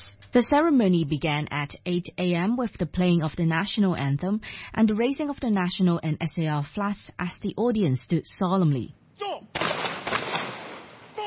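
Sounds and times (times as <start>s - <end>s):
speech: 0.4s - 9.7s
police rifle guard unit firing a ceremonial salute at a memorial ceremony: 9.6s - 11.2s.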